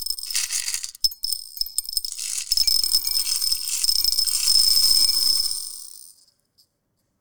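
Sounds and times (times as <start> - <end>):
many small beads stirred and poured by hand: 0.1 - 1.0, 1.9 - 5.6.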